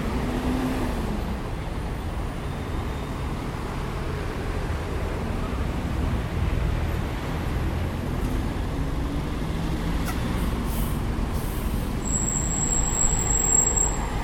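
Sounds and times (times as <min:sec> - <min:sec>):
open city street traffic in front of the cathedral near Plaza de Mayo: 0:00.0 - 0:14.2
high-pitched squeal from a city bus: 0:09.1 - 0:14.2.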